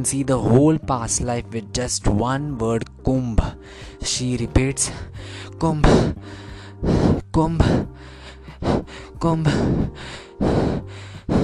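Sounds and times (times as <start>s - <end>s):
speech: 0.0s - 11.4s
quick heavy gasping breaths: 3.4s - 4.1s, 4.8s - 11.4s.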